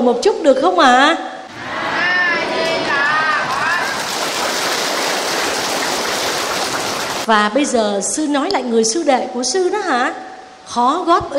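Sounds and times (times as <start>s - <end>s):
speech: 0.0s - 1.3s, 7.3s - 11.3s
steady hissing rain outdoors: 2.8s - 7.3s.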